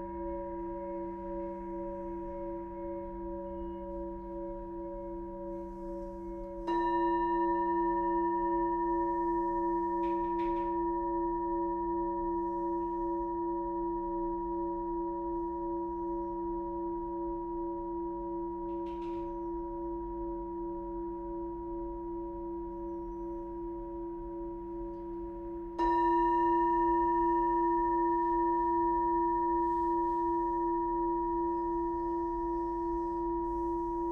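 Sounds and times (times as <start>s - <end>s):
singing bowl strikes: 0.0s - 14.4s, 24.5s - 34.0s
sound bath singing bowls ringing: 0.0s - 34.0s.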